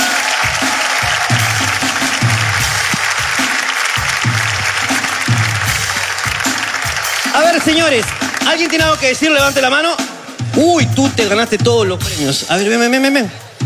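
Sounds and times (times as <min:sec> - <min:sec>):
studio audience applause: 0:00.0 - 0:09.6
steady thumping low beat: 0:00.5 - 0:12.5
speech: 0:07.6 - 0:13.4.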